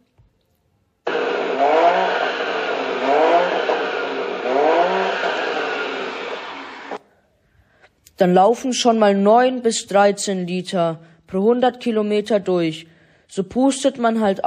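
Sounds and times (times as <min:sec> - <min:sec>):
car engine revving hard while accelerating through the gears: 0:01.1 - 0:07.0
speech: 0:08.2 - 0:14.4.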